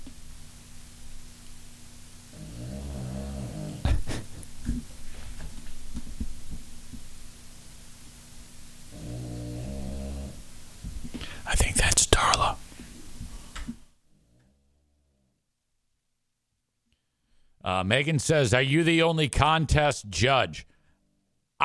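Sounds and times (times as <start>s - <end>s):
steady low hum: 0.0s - 21.6s
dog snoring in deep rumbling pulls: 2.3s - 3.9s, 8.9s - 10.5s
speech: 17.7s - 20.7s.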